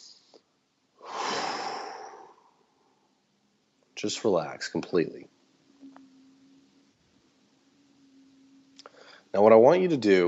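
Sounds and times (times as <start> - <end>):
deep breath during a guided relaxation exercise: 1.0 - 3.1, 8.8 - 9.3
speech: 4.0 - 5.4, 9.3 - 10.2.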